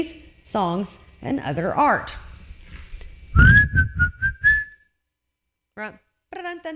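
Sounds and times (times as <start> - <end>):
speech: 0.0 - 2.2, 5.8 - 6.7
person whistling a tune: 3.4 - 4.8.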